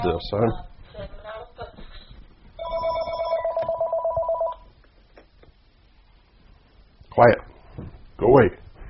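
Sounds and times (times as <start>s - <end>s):
speech: 0.0s - 1.1s, 7.2s - 7.4s
phone ringing with electronic trill: 2.6s - 4.7s.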